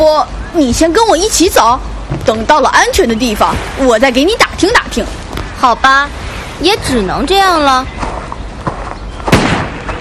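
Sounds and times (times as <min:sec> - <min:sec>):
steady noisy background: 0:00.0 - 0:09.9
speech: 0:00.2 - 0:08.0
gunshots: 0:09.3 - 0:09.9.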